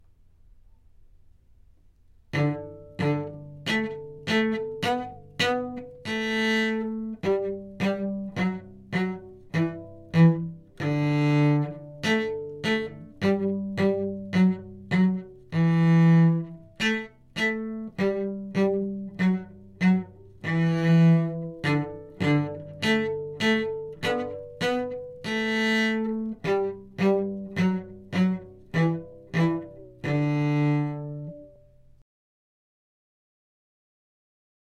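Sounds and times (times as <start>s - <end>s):
final cello twinkle: 2.3s - 32.0s.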